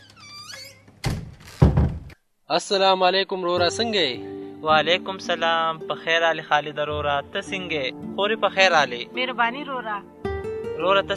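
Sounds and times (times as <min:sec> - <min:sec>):
door being opened to let a visitor in: 0:00.4 - 0:02.2
speech: 0:02.5 - 0:10.2, 0:10.8 - 0:11.1.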